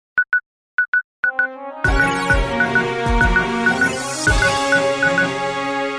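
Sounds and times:
short electronic beeps like telephone dialing tones: 0.2 - 5.4
news jingle musical sting with punchy hits and synth chords: 1.4 - 5.9.

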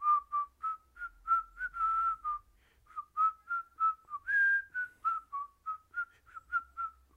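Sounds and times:
person whistling a melodic tune: 0.0 - 7.1.

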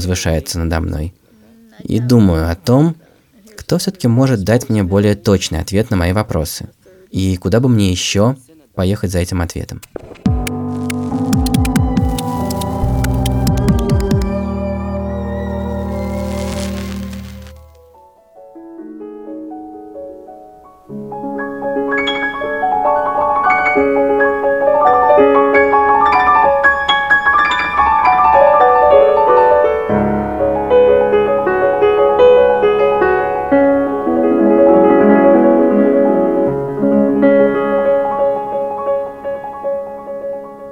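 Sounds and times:
speech: 0.0 - 1.2, 1.8 - 3.0, 3.7 - 10.3
old grand piano played in a flowing solo passage: 10.2 - 40.6.

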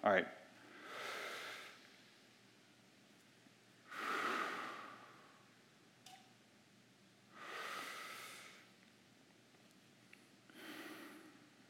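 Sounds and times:
slow deep breaths during a guided breathing exercise: 0.6 - 1.9, 3.8 - 5.5, 7.3 - 8.7, 10.5 - 11.6.

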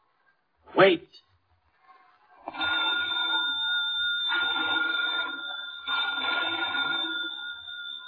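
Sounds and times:
speech: 0.8 - 1.2
old-fashioned telephone bell ringing in an old lighthouse: 2.5 - 8.0.

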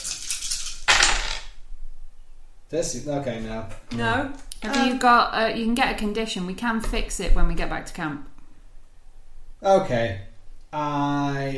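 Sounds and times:
seven dice rattled and tumbling onto a hard surface: 0.0 - 1.5
speech: 2.7 - 8.3, 9.6 - 11.5.

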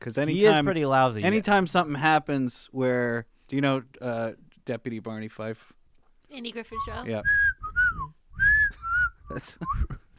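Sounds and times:
speech: 0.0 - 7.6, 9.3 - 10.1
person whistling a tune: 6.8 - 10.0.

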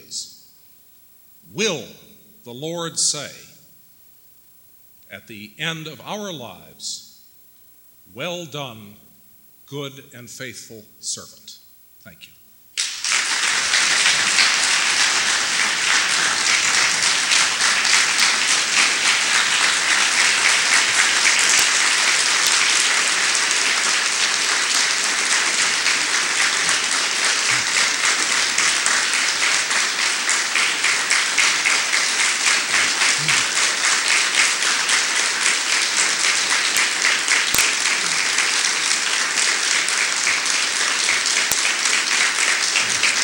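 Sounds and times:
speech: 1.5 - 3.5, 5.1 - 7.1, 8.1 - 9.0, 9.7 - 12.4
large crowd applauding after a speech: 12.8 - 43.2.

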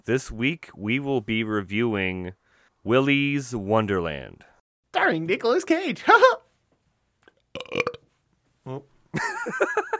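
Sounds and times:
speech: 0.0 - 6.4, 8.7 - 9.9
loud croaky burp: 7.5 - 8.0.

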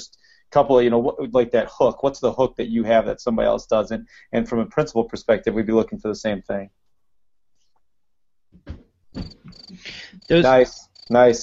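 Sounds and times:
speech: 0.0 - 6.8, 8.6 - 11.4
cricket chirping sound effect: 9.1 - 11.4.

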